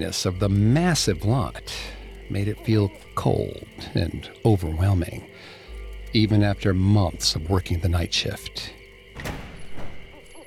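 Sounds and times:
speech: 0.0s - 9.4s
heavy soundstage door latch releasing: 9.1s - 10.2s
heavy soundstage door scraping as it swings open: 9.2s - 10.1s.

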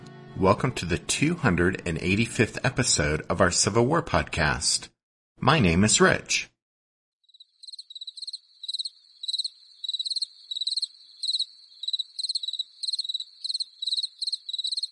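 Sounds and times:
speech: 0.4s - 6.5s
crickets chirping: 7.3s - 14.9s.

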